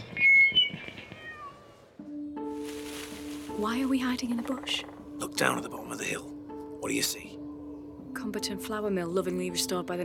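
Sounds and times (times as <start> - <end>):
several cats meowing and yowling: 1.0 - 1.9
speech: 3.6 - 6.3, 6.9 - 7.4, 8.2 - 10.0.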